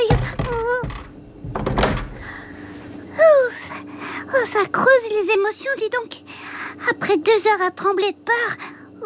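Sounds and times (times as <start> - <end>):
door swung shut quickly with a solid thud: 0.0 - 2.4
speech: 4.5 - 9.0.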